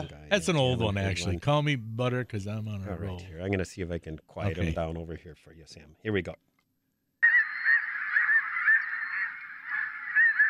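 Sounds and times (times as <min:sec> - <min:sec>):
speech: 0:00.0 - 0:06.5
flock of snow geese honking: 0:07.2 - 0:10.4.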